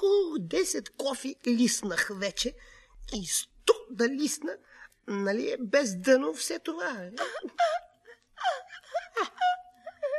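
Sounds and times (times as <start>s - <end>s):
speech: 0.0s - 7.8s
person sobbing and whimpering: 7.1s - 10.1s.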